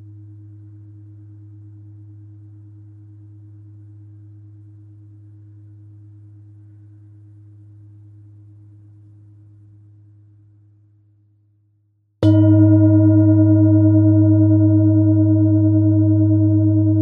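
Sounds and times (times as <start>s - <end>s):
Tibetan metal singing bowl humming and ringing: 12.2s - 16.9s.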